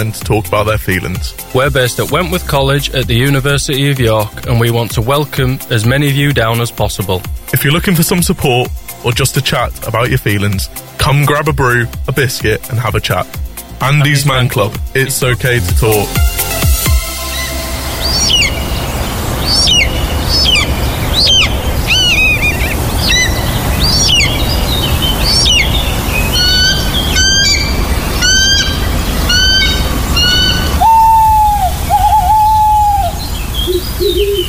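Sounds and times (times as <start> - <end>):
speech: 0.0 - 16.6
birds of prey calling and squawking: 17.2 - 34.4.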